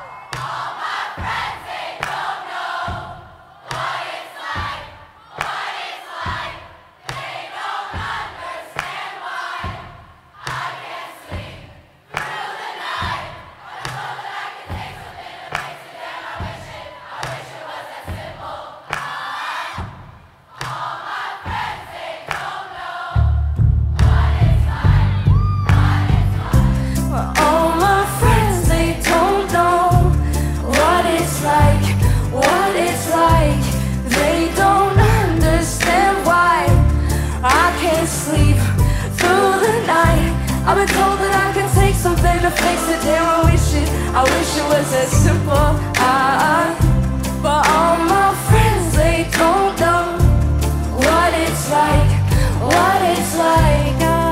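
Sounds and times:
large concert crowd singing along to a chorus: 0:00.0 - 0:54.3
full band with heavy drums and bass: 0:23.6 - 0:54.3.

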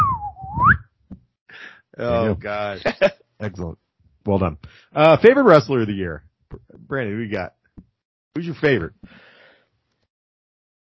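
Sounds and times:
person whistling a slide-whistle imitation of a fart: 0:00.0 - 0:00.9
speech: 0:02.0 - 0:06.2, 0:06.9 - 0:07.6, 0:08.4 - 0:09.3.

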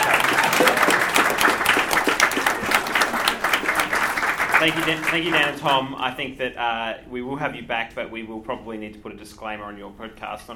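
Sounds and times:
audience applause: 0:00.0 - 0:06.0
speech: 0:04.6 - 0:10.5.

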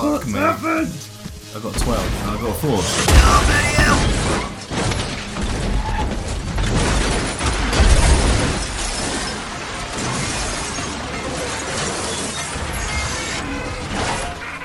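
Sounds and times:
speech: 0:00.1 - 0:04.5
car crash with tumbling metal impacts: 0:01.7 - 0:14.6
glass shattering: 0:03.1 - 0:14.4.

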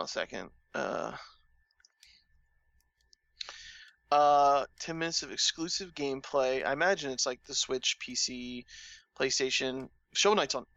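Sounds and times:
speech: 0:00.0 - 0:01.4, 0:04.1 - 0:10.7
computer mouse clicking while opening a game link: 0:01.7 - 0:02.2
breathy bursts: 0:03.4 - 0:04.0, 0:08.7 - 0:09.2.

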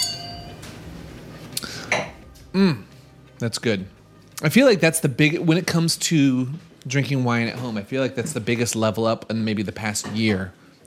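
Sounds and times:
glasses clinking in a toast: 0:00.0 - 0:00.8
speech: 0:02.6 - 0:10.8.

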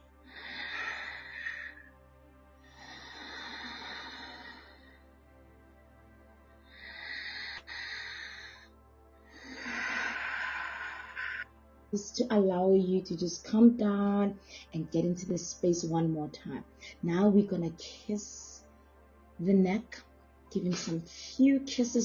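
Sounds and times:
slow deep breaths during a guided intimate exercise: 0:00.0 - 0:11.7, 0:14.4 - 0:14.7
speech: 0:11.9 - 0:18.5, 0:19.4 - 0:22.0.

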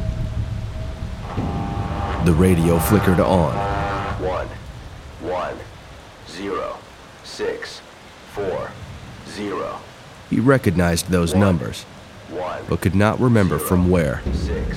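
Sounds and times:
deep rumble of thunder rolling: 0:00.0 - 0:06.9, 0:08.3 - 0:14.7
heavy rain hissing: 0:00.0 - 0:14.7
speech: 0:02.2 - 0:03.6, 0:07.4 - 0:14.7.

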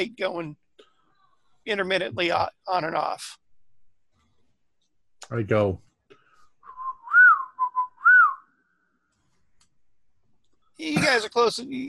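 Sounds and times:
speech: 0:00.0 - 0:00.6, 0:01.6 - 0:03.4, 0:05.2 - 0:05.9, 0:10.8 - 0:11.8
person whistling a short tune as a signal: 0:06.6 - 0:08.5.

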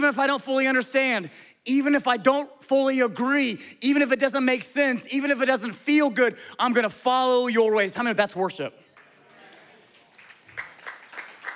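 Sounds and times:
speech: 0:00.1 - 0:08.8
crowd clapping in a reverberant room: 0:08.8 - 0:11.5.

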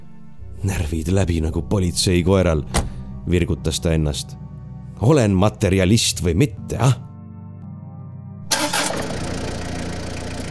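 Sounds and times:
speech: 0:00.6 - 0:04.4, 0:05.0 - 0:07.0
car engine cranking and starting: 0:08.4 - 0:10.4.

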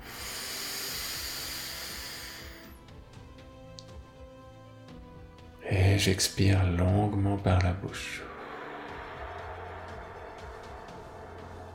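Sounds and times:
deep inhale through the nose during a guided breathing exercise: 0:00.0 - 0:02.8
speech: 0:06.0 - 0:08.3.

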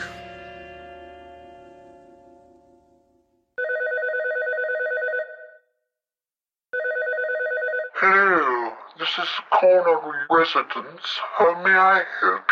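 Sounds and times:
telephone electronic ring tone on an outgoing call: 0:03.6 - 0:05.7, 0:06.7 - 0:08.1
speech: 0:08.0 - 0:08.3, 0:09.1 - 0:12.5.

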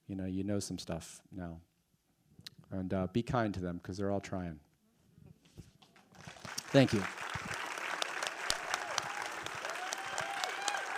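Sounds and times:
speech: 0:00.1 - 0:01.7, 0:02.7 - 0:04.7, 0:06.7 - 0:07.2
crowd applauding: 0:06.1 - 0:10.9
faint cheering: 0:06.6 - 0:10.9.

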